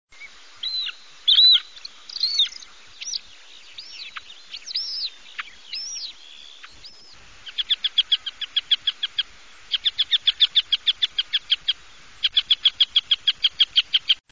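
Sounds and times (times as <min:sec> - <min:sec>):
Montagu's harrier calling: 0:00.2 - 0:14.2.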